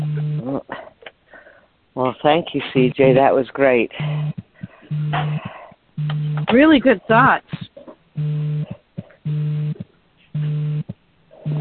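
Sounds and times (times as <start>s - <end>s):
faint noise: 0.0s - 11.5s
speech: 2.2s - 4.4s, 5.1s - 7.6s
alarm buzzing beeps: 4.0s - 9.8s, 10.4s - 11.5s.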